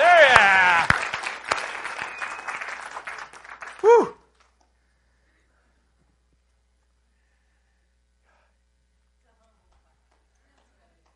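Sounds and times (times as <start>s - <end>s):
crowd applauding: 0.0s - 4.4s.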